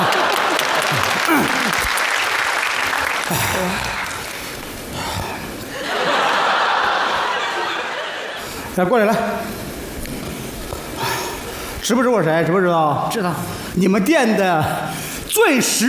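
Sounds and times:
people laughing and chuckling: 0:00.0 - 0:02.2, 0:05.6 - 0:09.4
room full of people applauding: 0:00.0 - 0:05.2, 0:05.8 - 0:08.4
speech: 0:08.8 - 0:09.6, 0:11.8 - 0:14.8, 0:15.4 - 0:15.8.

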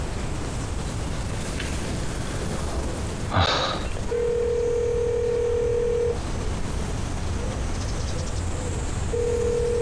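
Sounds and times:
faint hiss: 0:00.0 - 0:09.8
steady electronic ringback tone of an unanswered call: 0:04.1 - 0:06.2, 0:09.1 - 0:09.8
phone dialing: 0:04.2 - 0:06.2, 0:09.2 - 0:09.8.

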